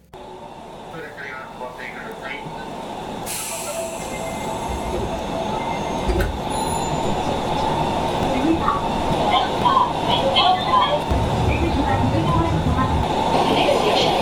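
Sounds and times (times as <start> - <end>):
subway train rumbling along the rails: 0.0 - 14.2
high-pitched subway train wheel squeals: 5.5 - 8.0.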